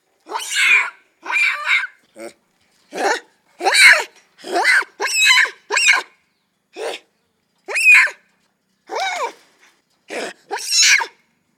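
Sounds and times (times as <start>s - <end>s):
macaque barks and screechy cries: 0.3s - 2.0s, 3.0s - 6.2s, 7.7s - 8.3s, 10.1s - 11.2s.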